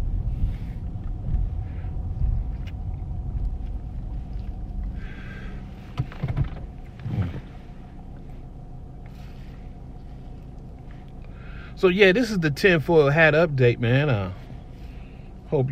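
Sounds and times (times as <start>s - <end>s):
automatic car wash machinery rumbling inside a car: 0.0s - 15.7s
thumps and clunks against the car body: 5.9s - 7.4s
speech: 11.8s - 14.4s, 15.5s - 15.7s.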